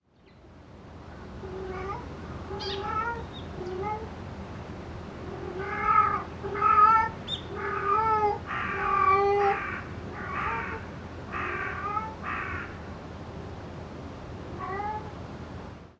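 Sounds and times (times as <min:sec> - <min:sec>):
cat: 0:01.4 - 0:04.1, 0:05.2 - 0:12.7, 0:14.5 - 0:15.1.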